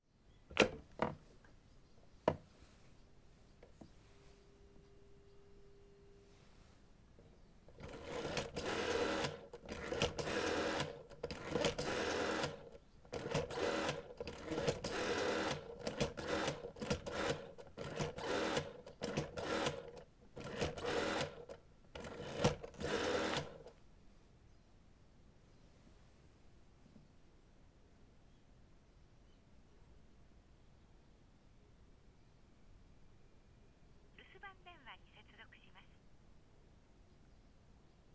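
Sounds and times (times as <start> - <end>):
black telephone dialing: 7.7 - 23.7.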